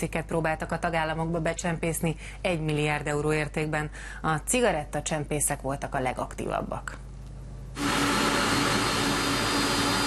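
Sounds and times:
speech: 0.0s - 7.1s
cargo plane jet engine roar: 7.8s - 10.0s.

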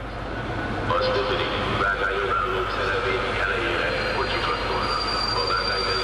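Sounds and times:
locomotive pulling into a station on the Szob line: 0.0s - 6.0s
screeching locomotive wheel squeal: 3.8s - 6.0s.

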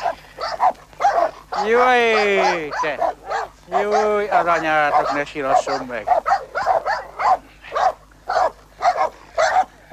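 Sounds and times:
vicious dog barking aggressively: 0.0s - 9.9s
speech: 1.6s - 3.1s, 3.7s - 6.2s.

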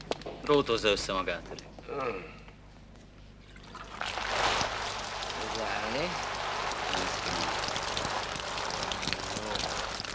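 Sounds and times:
speech: 0.5s - 2.4s, 5.6s - 6.3s
water running from a tap over a man: 3.6s - 10.1s.

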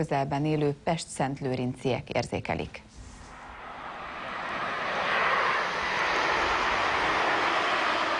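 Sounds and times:
speech: 0.0s - 3.0s
low-flying jet airplane passing overhead near Ferihegy Airport: 3.0s - 8.1s.

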